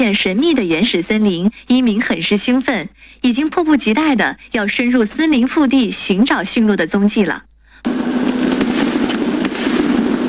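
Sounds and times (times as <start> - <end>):
speech: 0.0 - 8.2
string of firecrackers going off in a forest: 7.9 - 10.2.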